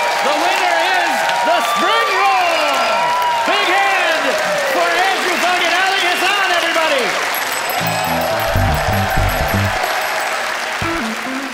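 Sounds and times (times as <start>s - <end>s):
whoops and shouted cheers: 0.0s - 5.3s, 7.5s - 11.0s
loud sustained applause from a large studio audience: 0.0s - 11.5s
brief rising musical sting: 7.7s - 11.1s.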